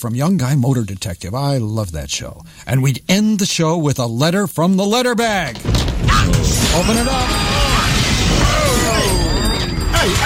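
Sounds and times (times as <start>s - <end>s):
speech: 0.0s - 8.6s
loud crash of breaking glass: 5.6s - 10.2s.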